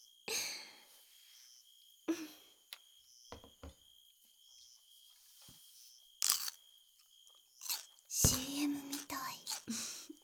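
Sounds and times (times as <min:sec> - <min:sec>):
speech: 0:02.1 - 0:02.4
crunchy biting and chewing of a summer snack: 0:06.2 - 0:10.2.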